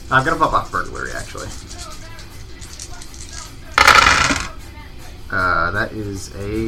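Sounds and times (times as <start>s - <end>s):
speech: 0.1s - 2.0s, 5.3s - 6.6s
dice clattering and rattling across a hard surface: 1.5s - 4.5s.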